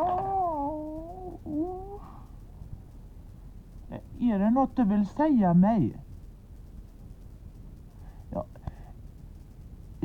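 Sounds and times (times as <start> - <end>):
cat meowing plaintively: 0.0 - 2.2
low hum: 0.0 - 10.0
speech: 4.3 - 6.0.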